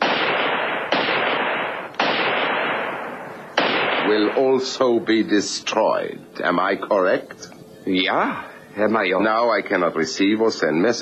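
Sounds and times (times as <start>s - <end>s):
gunshots fired at a radio transmitter in a schoolhouse: 0.0s - 5.0s
speech: 4.1s - 11.0s.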